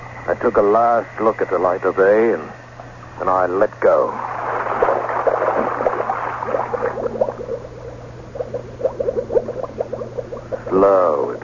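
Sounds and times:
speech: 0:00.3 - 0:02.6, 0:03.2 - 0:04.3
air bubbling out of a diving helmet valve underwater: 0:04.2 - 0:11.4.

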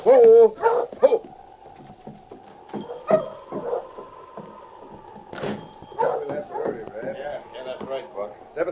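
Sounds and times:
sled dog team barking and yipping excitedly: 0:00.0 - 0:06.8.

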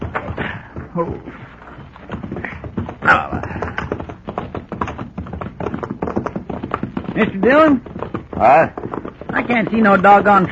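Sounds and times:
hooves of horses, a buckskin among them, setting off on a ride in the dark: 0:00.0 - 0:10.5
speech: 0:01.0 - 0:01.5, 0:03.1 - 0:03.6, 0:07.2 - 0:10.5.

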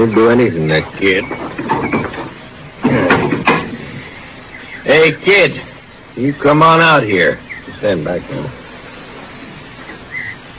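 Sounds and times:
speech: 0:00.0 - 0:02.2, 0:04.9 - 0:08.6
faint hum: 0:00.0 - 0:10.5
cellar door thud: 0:01.4 - 0:03.8.

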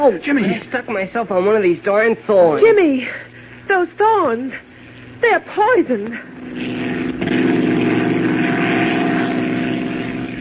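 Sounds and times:
speech: 0:00.0 - 0:06.7
airplane engine droning inside cabin: 0:00.0 - 0:10.3.

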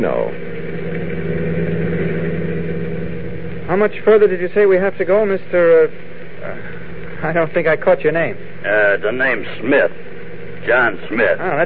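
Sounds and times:
speech: 0:00.0 - 0:00.6, 0:03.7 - 0:11.6
car engine droning inside a moving car: 0:00.0 - 0:09.0.

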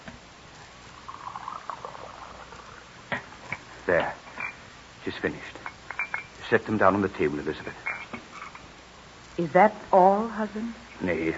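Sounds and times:
fluid poured into a glass beaker: 0:00.9 - 0:02.9
speech: 0:03.9 - 0:04.2, 0:05.0 - 0:05.7, 0:06.5 - 0:07.9, 0:09.4 - 0:11.3.

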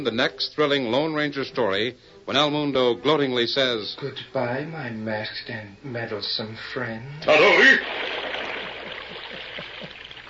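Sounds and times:
speech: 0:00.0 - 0:08.2
water pouring into a well: 0:07.3 - 0:10.2.

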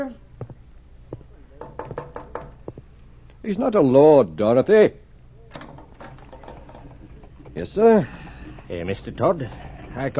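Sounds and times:
speech: 0:00.0 - 0:00.2, 0:03.4 - 0:05.0, 0:07.6 - 0:10.1
sharp knocks at a door: 0:01.6 - 0:02.8.

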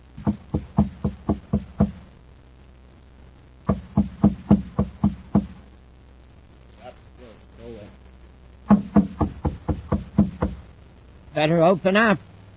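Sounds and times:
rapid knocking on a door: 0:00.2 - 0:02.0, 0:03.7 - 0:05.6, 0:08.7 - 0:10.6
speech: 0:11.4 - 0:12.3.

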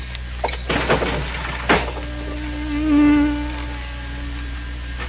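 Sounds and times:
knocks and thumps: 0:00.4 - 0:02.1
bee buzzing: 0:01.8 - 0:05.0.

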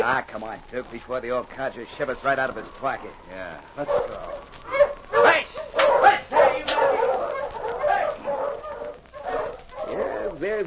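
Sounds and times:
speech: 0:00.0 - 0:05.4, 0:10.4 - 0:10.6
dog barking: 0:03.8 - 0:10.2.

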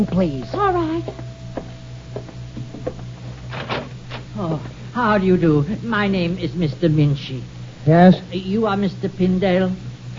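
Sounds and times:
speech: 0:00.0 - 0:01.4, 0:04.4 - 0:09.9
low mechanical hum: 0:00.0 - 0:10.1
wooden door being pushed shut: 0:03.5 - 0:04.2.

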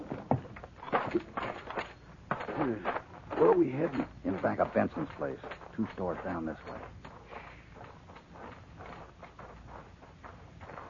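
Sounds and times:
horse hooves clip-clopping in a walking rhythm: 0:00.0 - 0:10.8
speech: 0:01.1 - 0:01.4, 0:03.6 - 0:07.0.

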